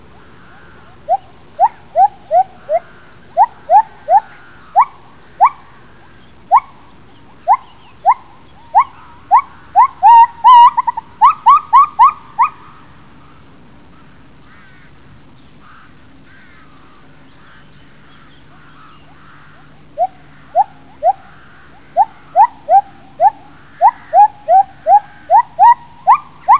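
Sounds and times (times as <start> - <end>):
male gibbons calling: 0.2 - 12.8, 18.3 - 26.5.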